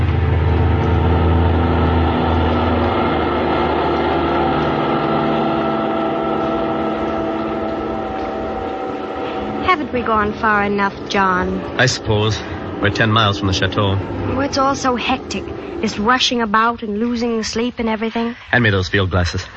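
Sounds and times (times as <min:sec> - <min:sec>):
car engine running: 0:00.0 - 0:19.5
speech: 0:10.0 - 0:19.5.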